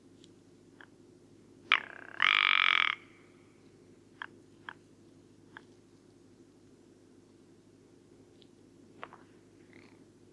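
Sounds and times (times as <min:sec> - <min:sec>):
rock ptarmigan croaking and rattling call at Karwendelspitze: 0:01.7 - 0:03.0.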